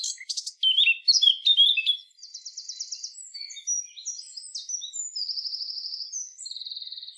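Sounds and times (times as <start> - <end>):
Eurasian blackcap Sylvia atricapilla song: 0.0 - 7.1.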